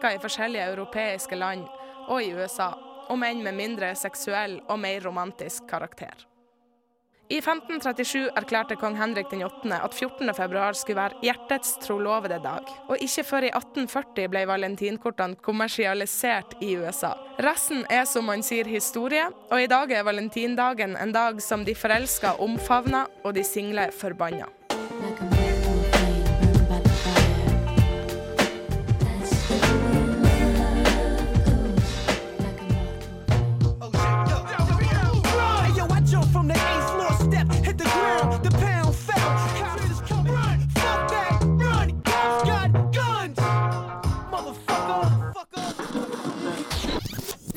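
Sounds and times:
speech: 0.0 - 6.3, 7.3 - 25.3
hip-hop and rock mashup music track: 24.7 - 47.0.

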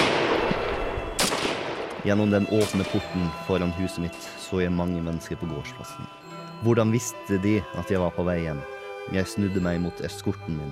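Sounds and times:
antique blunderbuss gunshot: 0.0 - 2.0
speech: 2.0 - 10.7.

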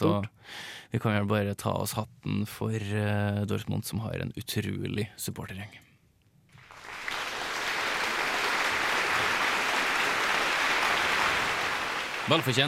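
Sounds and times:
speech: 0.0 - 5.9, 12.2 - 12.6
sustained applause from a crowd: 6.6 - 12.6.

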